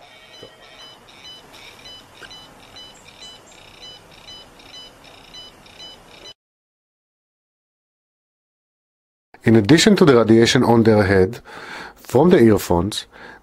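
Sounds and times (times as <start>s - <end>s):
background hiss: 0.0s - 6.3s, 9.4s - 13.4s
home telephone ringing with a high electronic trill: 0.0s - 6.4s
speech: 9.5s - 13.4s.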